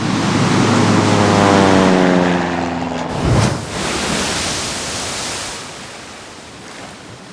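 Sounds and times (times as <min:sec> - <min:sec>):
loud continuous rushing water and ocean surf: 0:00.0 - 0:07.3
seaplane engine roar with a whining tone: 0:00.0 - 0:07.3
seaplane plunging nose-first into ocean waves with a heavy splash: 0:03.1 - 0:05.9.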